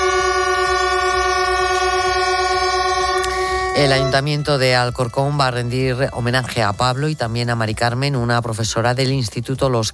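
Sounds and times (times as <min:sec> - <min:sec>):
train horns sounding in a station: 0:00.0 - 0:06.9
speech: 0:03.8 - 0:09.9.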